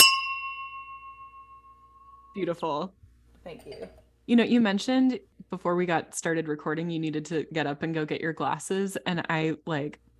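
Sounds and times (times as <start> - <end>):
drinking glasses clinking in a toast: 0.0 - 2.3
speech: 2.4 - 10.1.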